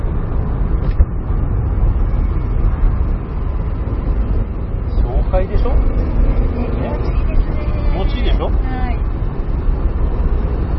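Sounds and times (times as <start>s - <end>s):
turbocharged car engine droning: 0.0s - 10.7s.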